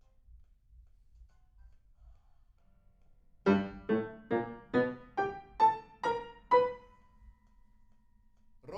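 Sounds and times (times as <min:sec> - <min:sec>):
piano: 0:03.4 - 0:07.3.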